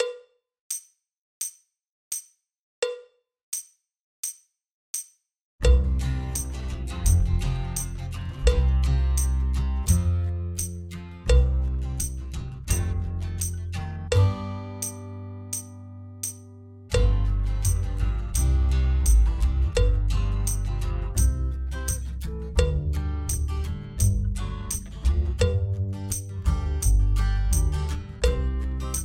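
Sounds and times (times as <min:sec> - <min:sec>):
drum kit playing a country reel backing track: 0:05.6 - 0:29.0.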